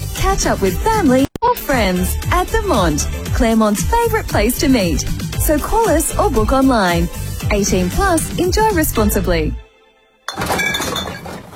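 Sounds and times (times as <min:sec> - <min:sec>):
speech: 0:00.3 - 0:09.6
glass drink containers clinking together for recycling: 0:10.3 - 0:11.5.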